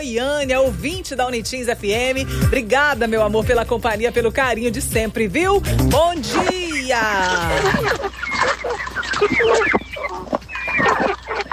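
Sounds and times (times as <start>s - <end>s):
speech: 0.0s - 10.3s
flock of chickens clucking and squawking: 5.6s - 11.5s.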